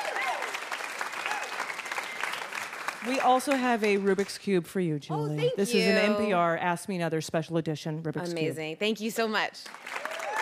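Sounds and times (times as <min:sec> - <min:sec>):
live audience applause for a guest: 0:00.0 - 0:04.4, 0:09.6 - 0:10.3
speech: 0:03.0 - 0:10.0.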